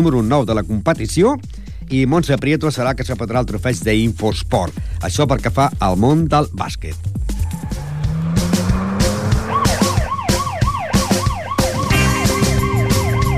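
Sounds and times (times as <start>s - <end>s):
speech: 0.0s - 7.2s
musical jingle with a driving beat: 0.0s - 13.3s
tire squeals: 7.2s - 13.3s
engines revving: 7.3s - 13.3s
sirens wailing: 7.3s - 13.3s.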